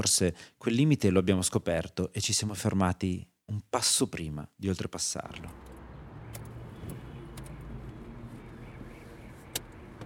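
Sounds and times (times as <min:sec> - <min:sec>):
speech: 0:00.0 - 0:05.7
car interior road and engine noise while driving: 0:05.5 - 0:10.0.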